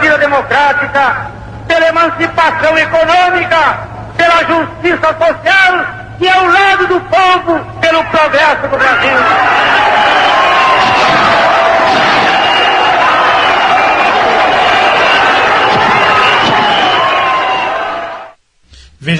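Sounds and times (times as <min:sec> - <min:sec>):
speech: 0:00.4 - 0:12.0
large crowd cheering at a political speech: 0:08.0 - 0:18.4.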